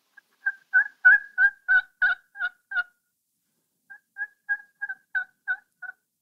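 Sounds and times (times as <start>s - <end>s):
soft pleading turkey yelps on a turkey hunting call: 0.4s - 2.9s, 3.9s - 6.0s.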